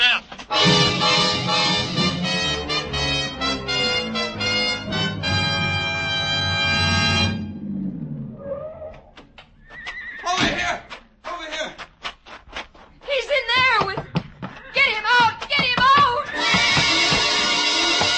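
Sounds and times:
sustained loud noisy roar: 0.6s - 9.0s
horse rearing and screaming in a stall: 8.3s - 10.8s, 15.9s - 18.1s
hooves clawing and knocking against the stall: 9.0s - 18.1s.

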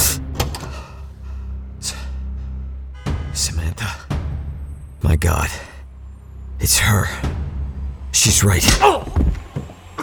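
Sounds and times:
door opening with sharp clicks and rattles: 0.3s - 0.8s
speech: 3.4s - 4.1s, 5.0s - 5.7s, 6.6s - 7.4s, 8.1s - 9.3s.

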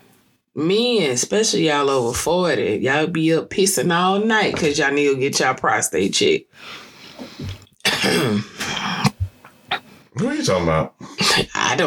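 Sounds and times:
speech: 0.6s - 6.8s, 8.0s - 8.5s, 10.2s - 11.8s
loud rasping gravelly throat clearing: 7.8s - 9.9s, 11.0s - 11.8s.

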